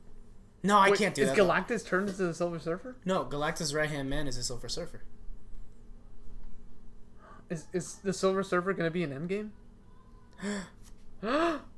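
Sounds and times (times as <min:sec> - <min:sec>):
speech: 0:00.6 - 0:05.2, 0:07.5 - 0:09.6, 0:10.4 - 0:11.7
person gasping: 0:10.4 - 0:11.7.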